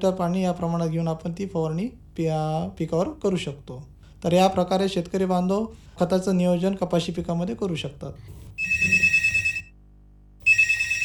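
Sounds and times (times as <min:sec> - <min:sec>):
speech: 0:00.0 - 0:09.0
electronic telephone ringtone for an incoming call: 0:08.6 - 0:09.7, 0:10.4 - 0:11.0.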